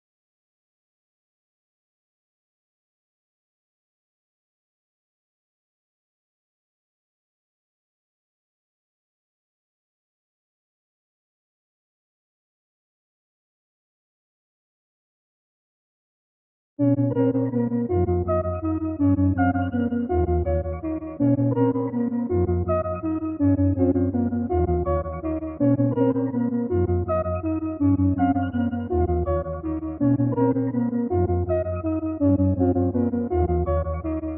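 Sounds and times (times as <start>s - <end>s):
A sharp minor half time melody loop: 16.8s - 34.3s.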